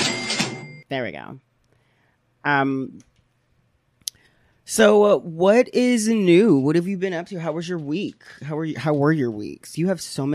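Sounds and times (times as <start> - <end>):
cash register ka-ching: 0.0 - 0.8
speech: 0.9 - 1.5, 2.4 - 3.1, 4.7 - 10.3.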